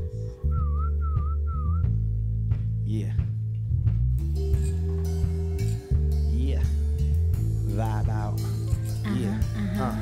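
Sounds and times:
loud low-end bed of music or hum: 0.0s - 9.9s
whistled tune: 0.1s - 2.1s
speech: 2.9s - 3.2s.

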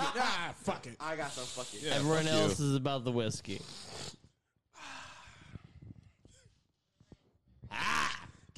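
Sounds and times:
speech: 0.2s - 4.2s
nasal sniff through the nose: 1.2s - 2.2s, 3.6s - 4.4s
quiet breathing: 3.6s - 7.4s.

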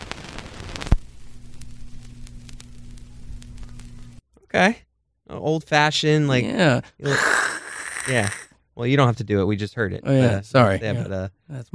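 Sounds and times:
needle dropped onto a vinyl record: 0.0s - 4.2s
low hum: 0.7s - 4.2s
speech: 4.6s - 4.8s, 5.4s - 7.3s, 8.0s - 11.7s.

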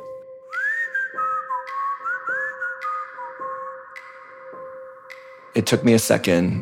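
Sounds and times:
person whistling an old-timey song: 0.4s - 5.4s
speech: 5.6s - 6.6s.

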